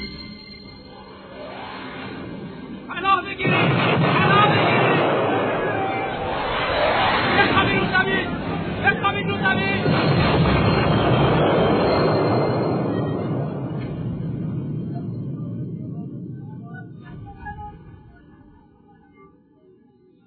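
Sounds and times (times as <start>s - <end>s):
low rumbling: 0.9s - 18.7s
sustained roar of rumbling debris: 2.2s - 17.7s
artillery shell or bomb blast: 3.4s - 7.3s, 9.8s - 12.9s.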